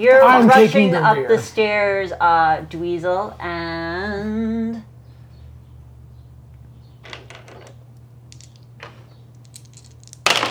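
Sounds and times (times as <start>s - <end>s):
laughter: 0.0s - 2.2s
speech: 0.0s - 4.9s
handful of dice rattling across a hard surface: 8.3s - 10.4s.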